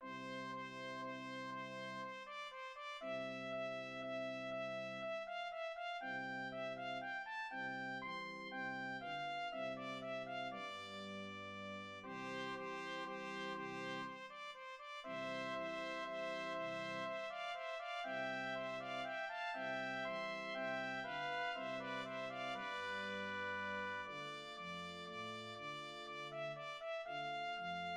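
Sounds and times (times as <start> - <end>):
trumpet duet: 0.0 - 7.7, 9.0 - 27.9.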